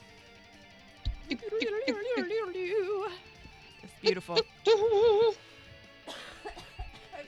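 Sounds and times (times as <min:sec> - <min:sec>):
laughter: 0:01.0 - 0:07.2
person coughing: 0:01.1 - 0:03.2, 0:03.9 - 0:05.4, 0:06.1 - 0:07.2
brief wavering vocal sound: 0:01.1 - 0:05.4
speech: 0:01.3 - 0:03.3, 0:04.0 - 0:05.4.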